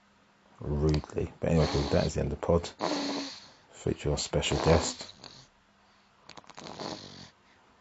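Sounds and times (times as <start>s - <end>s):
speech: 0.6s - 2.9s, 3.8s - 5.2s
loud snoring with rattling snorts: 1.1s - 3.6s, 4.3s - 5.5s, 6.3s - 7.4s.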